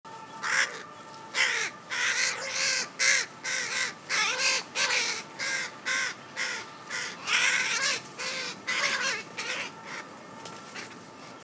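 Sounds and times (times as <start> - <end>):
Carrion crow Corvus corone cawing: 0.4 - 0.8, 1.4 - 10.0.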